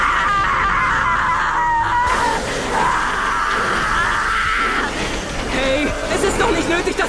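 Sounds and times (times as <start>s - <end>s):
titan screaming in pain: 0.0s - 5.0s
titan groaning: 0.0s - 6.4s.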